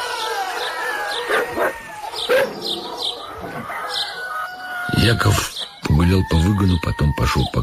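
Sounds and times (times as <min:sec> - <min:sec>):
several dogs barking together: 0:00.0 - 0:04.2
speech: 0:05.1 - 0:07.6.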